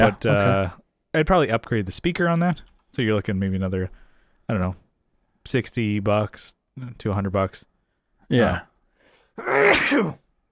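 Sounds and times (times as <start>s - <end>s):
speech: 0.0s - 4.8s, 5.4s - 7.7s, 8.3s - 8.7s, 9.4s - 10.2s
person sneezing: 9.4s - 10.3s.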